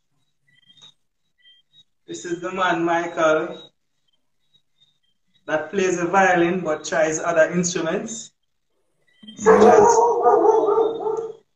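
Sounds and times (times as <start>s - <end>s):
speech: 2.1s - 3.7s, 5.5s - 8.3s, 9.3s - 10.7s
dog howling: 9.3s - 11.4s.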